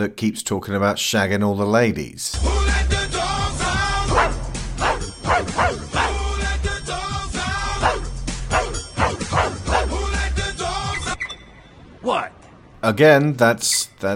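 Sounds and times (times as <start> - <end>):
speech: 0.0 - 3.0, 12.9 - 14.1
loud steady pop music: 2.4 - 11.2
pug barking and yipping: 4.1 - 6.2, 7.7 - 10.0.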